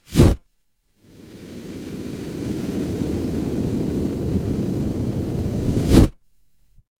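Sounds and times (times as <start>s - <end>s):
electric fire flame whoosh: 1.0s - 6.2s.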